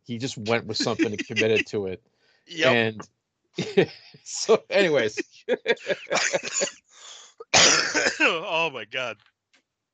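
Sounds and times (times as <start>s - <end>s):
laughter: 0.1s - 2.0s, 2.6s - 3.0s, 3.6s - 6.7s, 7.6s - 9.1s
speech: 0.1s - 9.3s
person with a cold coughing: 0.5s - 1.7s, 4.9s - 6.7s, 7.6s - 9.1s.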